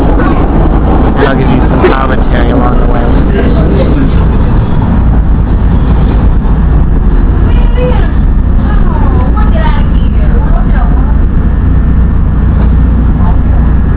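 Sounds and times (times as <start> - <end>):
subway train wheels and motor rumbling inside a moving car: 0.0 - 13.9
speech: 2.1 - 3.9.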